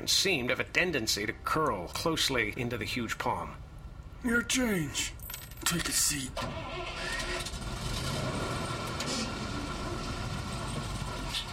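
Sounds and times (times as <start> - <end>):
speech: 0.0 - 3.6, 4.2 - 7.5
bus engine idling: 6.0 - 11.5.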